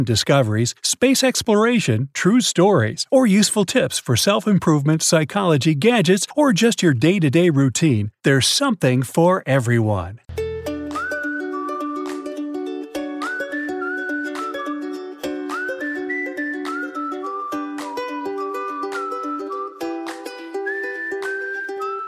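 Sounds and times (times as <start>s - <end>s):
speech: 0.0s - 10.2s
person whistling a bright wavering melody with the tongue: 10.7s - 22.0s.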